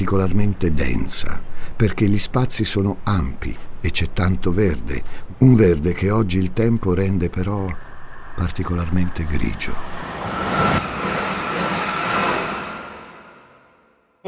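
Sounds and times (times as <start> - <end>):
speech: 0.0 - 7.8, 8.4 - 10.4
train rumbling past on a railway line on a foggy winter day: 7.3 - 14.0
long steady loud tonal whine: 7.7 - 14.1.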